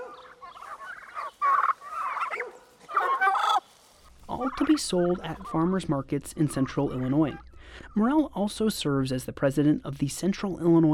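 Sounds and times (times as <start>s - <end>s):
turkeys gobbling on a farm: 0.0s - 8.3s
speech: 4.4s - 10.9s.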